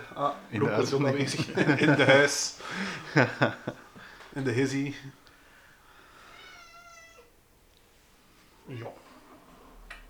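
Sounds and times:
speech: 0.2s - 3.8s, 4.4s - 5.2s, 8.7s - 9.0s
laughter: 0.6s - 4.0s
cat meowing: 6.3s - 7.4s.

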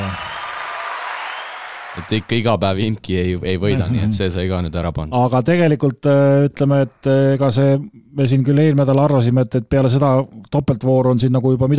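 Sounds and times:
crowd applauding with dense steady clapping: 0.0s - 2.5s
speech: 2.0s - 11.7s.

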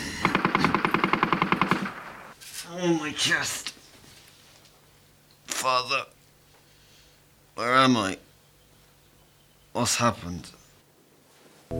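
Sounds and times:
machine gun firing a rapid burst: 0.2s - 2.3s
speech: 2.8s - 3.7s, 5.6s - 6.1s, 7.6s - 8.2s, 9.8s - 10.6s.

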